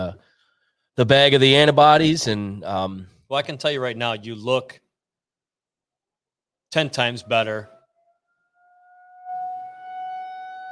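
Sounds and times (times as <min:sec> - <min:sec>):
speech: 0:01.0 - 0:04.8, 0:06.7 - 0:07.7
tornado warning sirens outdoors in South Lyon: 0:06.8 - 0:10.7.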